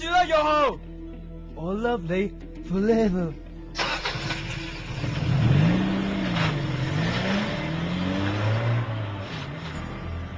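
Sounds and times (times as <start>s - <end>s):
speech: 0.2s - 0.9s, 1.6s - 3.4s
racing car engine revving: 4.0s - 10.3s.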